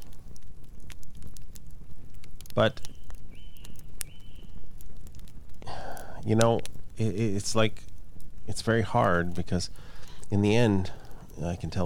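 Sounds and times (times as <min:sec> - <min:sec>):
campfire crackling with pops and snaps: 0:00.0 - 0:11.8
speech: 0:02.6 - 0:02.9, 0:06.2 - 0:07.9, 0:08.5 - 0:11.8
low breathy rumble: 0:04.8 - 0:11.8.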